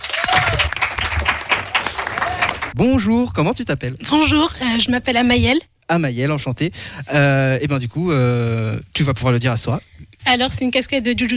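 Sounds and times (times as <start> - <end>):
live audience at an anime-themed quiz event applauding: 0.0 - 2.8
speech: 2.8 - 11.3.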